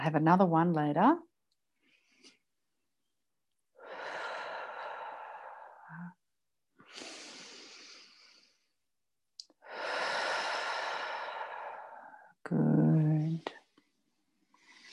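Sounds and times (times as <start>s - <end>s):
speech: 0.0s - 1.3s
deep breaths: 3.8s - 6.2s, 6.8s - 8.9s, 9.5s - 12.4s, 13.5s - 14.9s.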